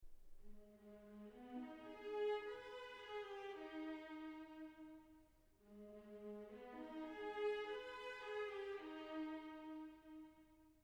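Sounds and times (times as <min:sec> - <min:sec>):
viola: 0:00.5 - 0:10.6.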